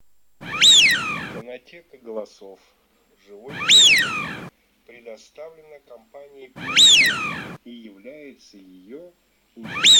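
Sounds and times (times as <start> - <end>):
Eurasian wigeon whistle: 0.4 - 1.4, 3.5 - 4.5, 6.6 - 7.6, 9.7 - 9.9.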